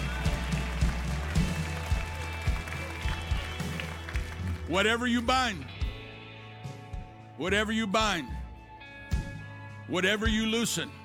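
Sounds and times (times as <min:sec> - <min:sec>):
audience applause in a large room: 0:00.0 - 0:05.0
speech: 0:04.7 - 0:05.7, 0:07.4 - 0:08.4, 0:09.9 - 0:11.0.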